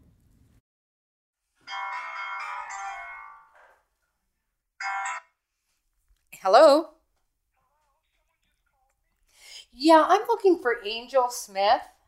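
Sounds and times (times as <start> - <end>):
phone ringing on the caller's end of an outgoing call: 1.6 - 3.8, 4.8 - 5.4
speech: 6.4 - 6.9, 9.8 - 11.9.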